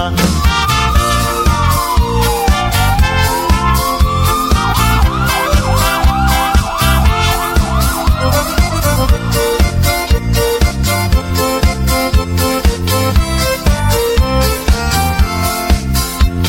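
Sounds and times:
steady rhythmic music beat: 0:00.0 - 0:16.4
ambulance siren wailing and yelping: 0:00.2 - 0:12.0.

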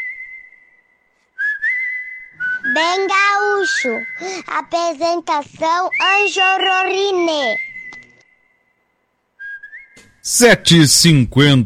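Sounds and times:
whistled notes ending a song: 0:00.0 - 0:04.4, 0:05.8 - 0:10.2
loud bright voiced sounds: 0:02.6 - 0:07.6
speech: 0:02.8 - 0:07.7, 0:10.3 - 0:11.6.

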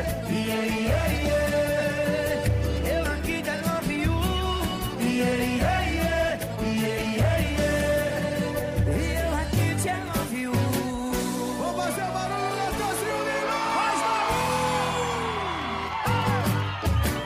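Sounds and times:
loud party track with thumping bass: 0:00.0 - 0:17.2
crowd shouting and whooping: 0:12.6 - 0:17.2.

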